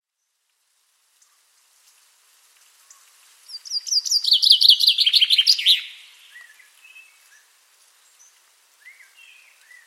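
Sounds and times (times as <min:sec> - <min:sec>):
common chaffinch singing: 0:03.5 - 0:06.6.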